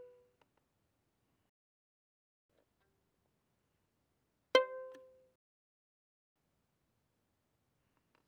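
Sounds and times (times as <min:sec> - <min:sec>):
violin pizzicato mezzo-forte on A string, C5 and B5: 0:04.5 - 0:05.1.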